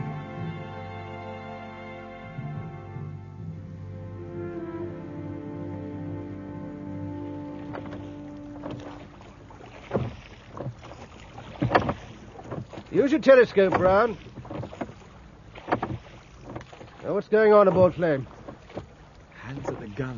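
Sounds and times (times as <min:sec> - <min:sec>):
low steady drone: 0:00.0 - 0:09.6
ship's rowboat oar strokes splashing in water: 0:06.2 - 0:20.1
speech: 0:13.0 - 0:14.3, 0:17.2 - 0:18.4, 0:20.0 - 0:20.1.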